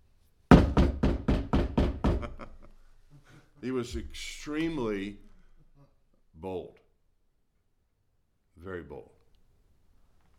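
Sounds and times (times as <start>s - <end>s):
forceful knocking on a house door: 0.5s - 2.4s
speech: 3.6s - 5.3s, 6.4s - 6.8s, 8.6s - 9.2s.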